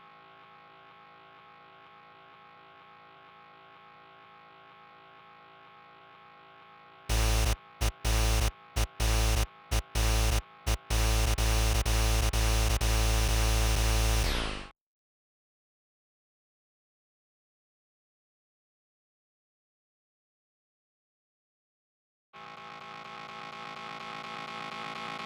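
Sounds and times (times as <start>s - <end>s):
synths with big bass: 7.1s - 14.5s.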